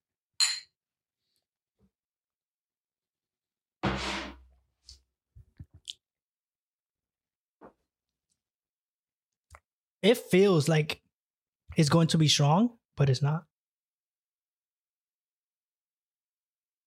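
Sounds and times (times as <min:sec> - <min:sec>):
glasses clinking in a toast: 0:00.4 - 0:00.7
speech: 0:10.0 - 0:11.0, 0:11.8 - 0:13.5.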